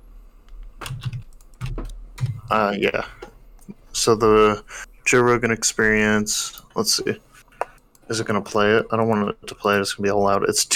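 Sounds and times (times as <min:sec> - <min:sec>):
typing on a computer keyboard: 0:00.8 - 0:02.5
speech: 0:02.5 - 0:03.2, 0:04.0 - 0:07.3, 0:08.1 - 0:10.7.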